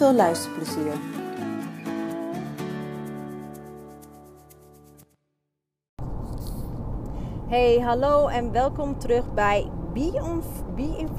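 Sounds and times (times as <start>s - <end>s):
speech: 0.0s - 1.2s, 7.5s - 11.1s
melodic intro tune: 0.0s - 5.0s
broadband rumble of a car interior while driving: 6.0s - 11.1s.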